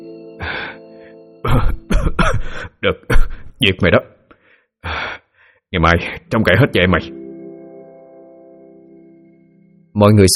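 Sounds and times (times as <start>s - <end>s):
man coughing, choking and wheezing after being gripped hard: 1.4s - 3.6s
speech: 2.4s - 4.1s, 5.7s - 7.2s, 10.0s - 10.3s.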